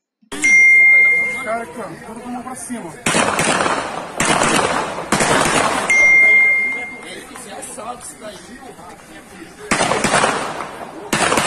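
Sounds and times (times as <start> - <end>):
shrill ringing tone: 0.4 - 1.7, 5.9 - 7.1
speech: 1.5 - 5.8, 7.8 - 11.4
rapid gunshots in an exchange of fire during an armed robbery in Brazil: 3.0 - 6.0, 9.7 - 11.4.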